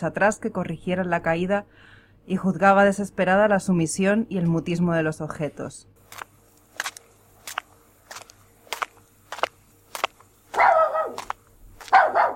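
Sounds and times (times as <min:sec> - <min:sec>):
speech: 0:00.0 - 0:06.3
dachshund barking on a bridge: 0:10.5 - 0:12.3.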